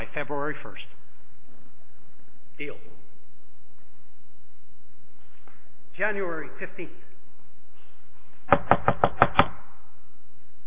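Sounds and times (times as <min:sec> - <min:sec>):
speech: 0:00.3 - 0:01.0, 0:02.6 - 0:03.1, 0:06.0 - 0:07.1
knocking on a door: 0:08.5 - 0:09.5.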